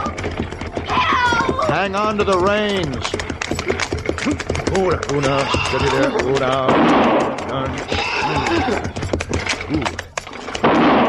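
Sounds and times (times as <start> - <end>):
rumble and commotion of a wagon chase with spooked horses: 0.0 - 11.0
speech: 1.8 - 3.2, 4.2 - 9.0, 9.7 - 10.0
rifle gunfire during a wagon chase: 6.7 - 7.4.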